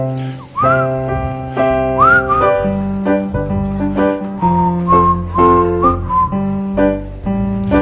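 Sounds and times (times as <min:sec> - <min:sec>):
instrumental accompaniment playing sustained chords: 0:00.0 - 0:07.8
person whistling a tune: 0:00.6 - 0:01.0, 0:02.0 - 0:02.7, 0:04.4 - 0:06.4.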